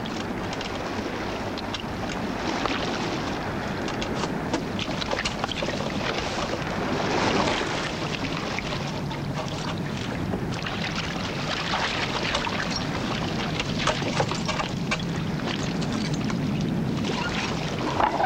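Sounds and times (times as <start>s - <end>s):
water wash around a small rowboat as people board and cast off: 0.0s - 18.2s
wind noise: 0.0s - 18.2s.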